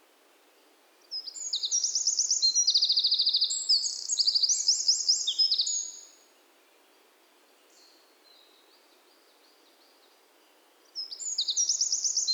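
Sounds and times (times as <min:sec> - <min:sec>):
Eurasian wren Troglodytes troglodytes loud fast song: 0:01.2 - 0:06.2, 0:11.0 - 0:12.3.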